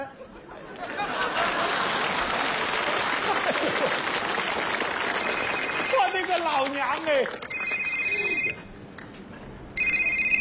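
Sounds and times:
laughter: 0:00.0 - 0:04.3
telephone ringing in bright electronic bursts: 0:05.2 - 0:06.3, 0:07.5 - 0:08.6, 0:09.8 - 0:10.3
speech: 0:06.4 - 0:07.5.

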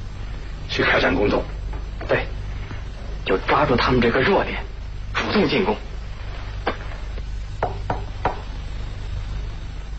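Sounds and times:
low steady hum: 0:00.0 - 0:09.9
speech: 0:01.0 - 0:02.3, 0:03.3 - 0:04.7, 0:05.3 - 0:05.8
sharp knocks on a door: 0:07.6 - 0:08.5.

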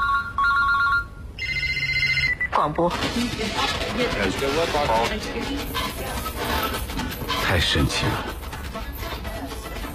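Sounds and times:
electronic telephone ringtone: 0:00.0 - 0:02.5
low hum: 0:00.0 - 0:09.9
speech: 0:02.6 - 0:08.4.

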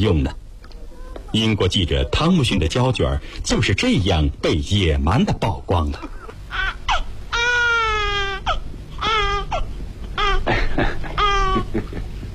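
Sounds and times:
speech: 0:00.0 - 0:00.4, 0:01.3 - 0:06.8
newborn baby boy crying: 0:06.0 - 0:11.8
laughter: 0:10.5 - 0:12.3.

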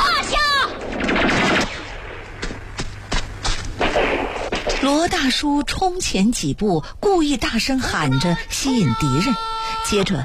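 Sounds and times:
gunfire in a woodland fight against enemy soldiers: 0:00.2 - 0:05.0
speech: 0:04.9 - 0:10.2.

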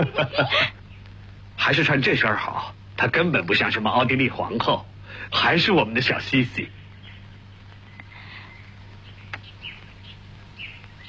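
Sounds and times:
laughter: 0:00.0 - 0:00.8
speech: 0:00.0 - 0:00.8, 0:01.6 - 0:06.8
steady low hum: 0:00.0 - 0:11.0
pet birds chirping: 0:00.7 - 0:01.2, 0:06.1 - 0:11.0.

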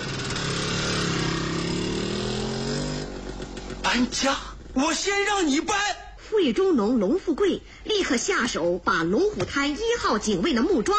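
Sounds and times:
motorcycle engine revving and accelerating away: 0:00.0 - 0:05.6
speech: 0:03.9 - 0:10.9.

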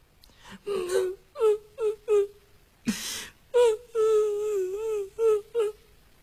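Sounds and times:
narrator imitating a woman crying: 0:00.6 - 0:02.3, 0:02.9 - 0:05.8.

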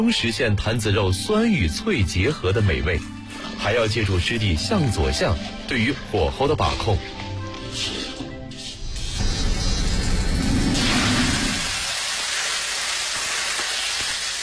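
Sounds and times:
speech: 0:00.0 - 0:08.0
pork belly pan-frying in hot oil: 0:08.9 - 0:14.4.

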